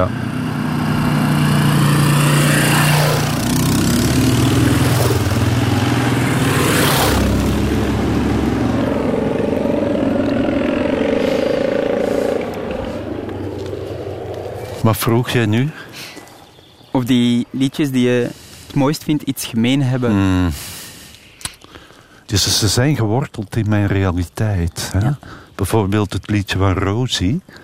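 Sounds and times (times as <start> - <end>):
speech: 0.0 - 0.2, 14.8 - 15.8, 17.0 - 20.8, 22.3 - 27.6
dirt bike motorcycle roaring past: 0.0 - 16.8.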